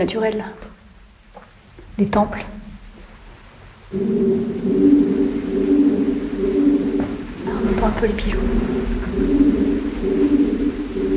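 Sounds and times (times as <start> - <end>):
speech: 0.0 - 0.7, 2.0 - 2.6, 3.9 - 5.2, 7.8 - 9.4
group of pigeons cooing echoing in a large cave: 3.9 - 11.1.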